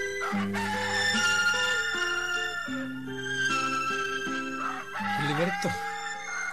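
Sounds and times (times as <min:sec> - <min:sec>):
several roosters crowing in chorus: 0:00.1 - 0:06.5.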